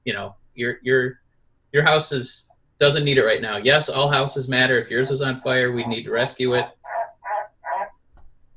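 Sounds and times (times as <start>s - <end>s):
speech: 0.0s - 7.0s
frog croaking: 4.9s - 8.0s
faint low thump: 8.1s - 8.5s.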